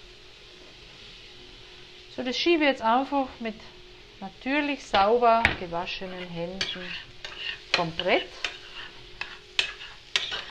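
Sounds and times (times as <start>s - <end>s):
steady low sizzle of food in a pan: 0.0s - 10.5s
speech: 2.2s - 7.1s, 7.8s - 8.5s
wooden spoon scraping and stirring food in a pan: 4.9s - 10.5s.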